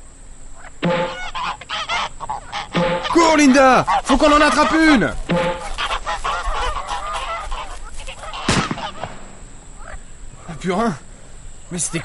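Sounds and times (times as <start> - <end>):
flock of released wild geese honking: 0.5 - 10.9
speech: 3.2 - 5.4, 10.6 - 11.0, 11.7 - 12.0
gunshot: 8.5 - 9.4.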